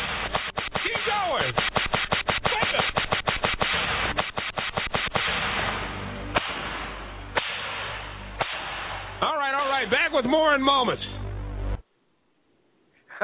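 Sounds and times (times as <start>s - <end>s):
whip cracking: 0.0s - 9.2s
steady rushing noise: 0.0s - 11.9s
speech: 10.1s - 11.1s.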